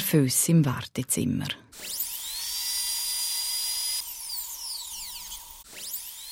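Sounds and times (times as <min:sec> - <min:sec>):
speech: 0:00.1 - 0:02.0
dentist's drill whirring with high-pitched whine: 0:01.7 - 0:06.3.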